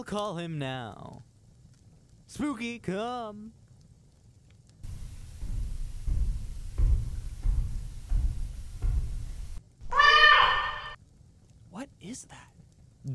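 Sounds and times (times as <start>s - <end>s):
speech: 0.0s - 1.2s, 2.3s - 3.6s, 11.8s - 13.1s
heavy rumbling thuds: 4.8s - 10.0s
large cat meowing: 9.9s - 11.0s.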